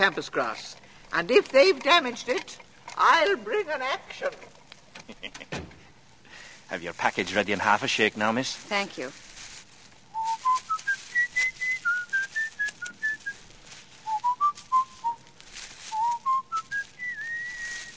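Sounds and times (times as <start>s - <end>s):
speech: 0.0s - 5.7s, 6.7s - 9.2s
soft noise: 0.0s - 17.9s
person whistling a tune: 10.1s - 13.4s, 14.0s - 15.2s, 15.9s - 17.9s.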